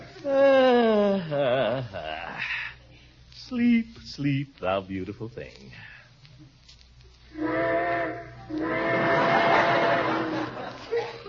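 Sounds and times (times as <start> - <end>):
steam train steady hissing: 0.0 - 11.2
speech: 4.2 - 5.9
steam train whistle blowing: 7.3 - 10.5
laughter: 9.0 - 11.2.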